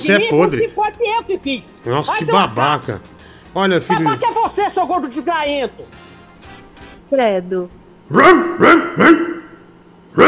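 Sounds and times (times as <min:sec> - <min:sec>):
speech: 0:00.0 - 0:06.0, 0:07.1 - 0:09.4
laughter: 0:03.7 - 0:04.9
dog barking sharply: 0:08.1 - 0:09.6.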